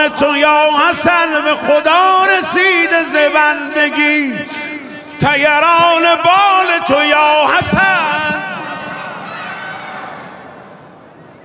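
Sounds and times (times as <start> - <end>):
speech: 0.0 - 4.6, 5.2 - 8.6
large crowd shouting and cheering: 7.1 - 11.4.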